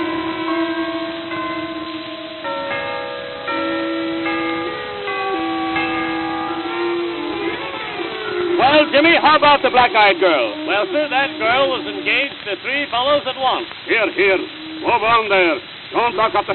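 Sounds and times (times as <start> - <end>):
church chimes playing a slow melody: 0.0 - 12.3
speech: 9.0 - 16.5.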